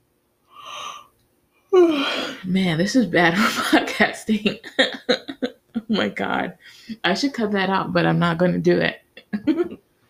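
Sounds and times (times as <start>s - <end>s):
breathy yawn: 0.5s - 1.1s, 1.7s - 2.4s
speech: 1.9s - 5.3s, 5.9s - 9.7s.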